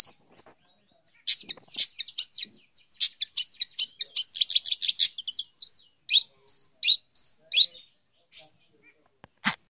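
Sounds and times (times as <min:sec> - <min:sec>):
long-tailed shrike song with chattering and whistled slurs: 0:00.0 - 0:09.2.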